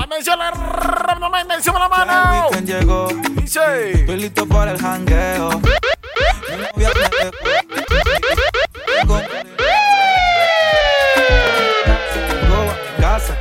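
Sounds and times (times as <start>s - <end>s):
speech: 0.2s - 5.8s
heavy bass thumps: 4.0s - 9.2s, 10.2s - 13.3s
police car siren: 5.5s - 13.3s.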